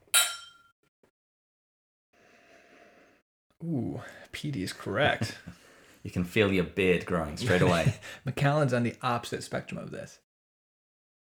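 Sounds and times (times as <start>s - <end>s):
custom-made scotch glasses clinking in a toast: 0.1s - 0.6s
speech: 3.6s - 10.2s
laughter: 4.8s - 5.6s, 7.2s - 8.3s.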